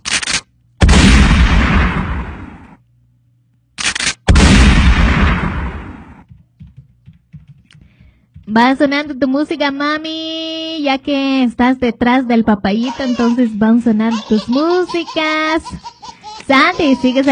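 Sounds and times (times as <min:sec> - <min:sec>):
gunfire sound effects: 0:00.8 - 0:02.7, 0:03.9 - 0:06.2
speech: 0:08.5 - 0:17.2.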